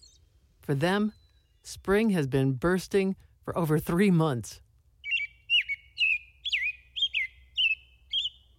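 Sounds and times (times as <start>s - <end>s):
bird singing bright chirping phrases: 0.0s - 8.5s
speech: 0.7s - 4.6s.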